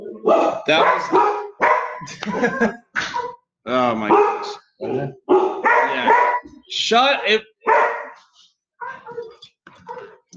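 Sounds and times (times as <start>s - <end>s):
dogs barking: 0.2s - 3.4s, 4.0s - 6.6s, 7.2s - 8.2s, 8.8s - 10.3s
dogs yipping: 0.3s - 3.4s, 4.1s - 4.6s, 5.3s - 6.5s, 7.6s - 8.2s, 8.8s - 10.3s
speech: 0.7s - 1.3s, 2.0s - 4.6s, 6.8s - 7.5s
laughter: 2.0s - 3.0s.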